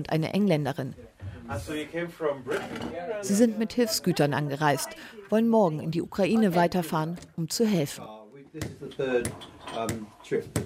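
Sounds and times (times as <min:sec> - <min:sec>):
speech: 0:00.0 - 0:10.6
dishes and cutlery clinking and clattering: 0:08.8 - 0:10.6.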